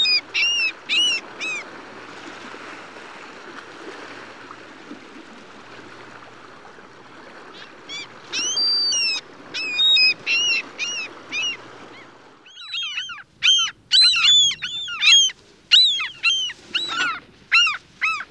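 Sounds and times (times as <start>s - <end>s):
mew gull high mewing calls on the West Coast of the USA: 0.0s - 1.6s, 7.5s - 18.2s.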